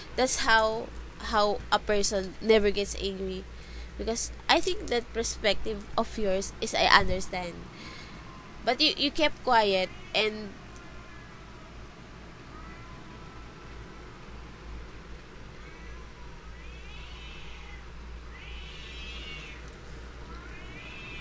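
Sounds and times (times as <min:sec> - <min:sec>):
constant low noise: 0:00.0 - 0:21.1
speech: 0:00.2 - 0:08.0, 0:08.6 - 0:10.6
pet cat meowing: 0:12.5 - 0:13.2, 0:15.6 - 0:19.7, 0:20.3 - 0:21.1.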